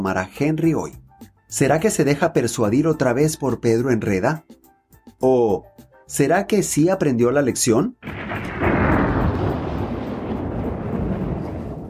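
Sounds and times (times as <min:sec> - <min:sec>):
speech: 0:00.0 - 0:04.6, 0:05.2 - 0:08.6
thunder rumbling from a strong storm: 0:08.0 - 0:11.8.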